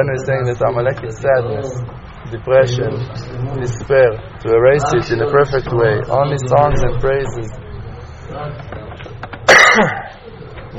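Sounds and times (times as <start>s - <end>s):
speech: 0.0s - 7.6s, 9.8s - 10.0s
single loud harsh cough with a rough throaty tail: 9.5s - 10.2s.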